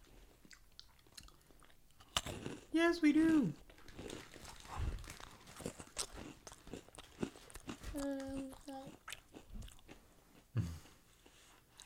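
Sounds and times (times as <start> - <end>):
speech: 2.8 - 3.6, 8.0 - 9.0
crunching of Japanese peanut ball snacks made with squid: 3.6 - 9.9.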